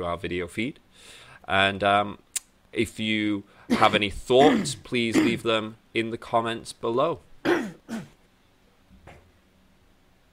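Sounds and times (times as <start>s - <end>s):
speech: 0.0s - 7.8s
harsh coughs: 3.7s - 5.4s, 7.4s - 8.2s.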